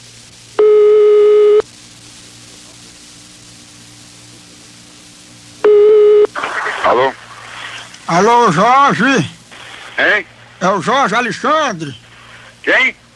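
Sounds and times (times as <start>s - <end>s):
hissy telephone line noise with a low hum: 0.0s - 13.1s
ringback tone on an outgoing telephone call: 0.6s - 1.6s, 5.6s - 6.3s
speech: 8.1s - 9.4s, 10.0s - 12.0s, 12.6s - 13.0s.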